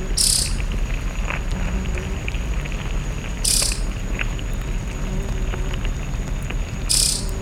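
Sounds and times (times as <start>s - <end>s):
flies buzzing: 0.0s - 0.7s, 1.3s - 2.6s, 3.4s - 4.0s, 4.7s - 6.1s, 6.8s - 7.4s
bright high insect chirps outdoors: 0.0s - 7.4s
faint ticks: 0.2s - 7.4s.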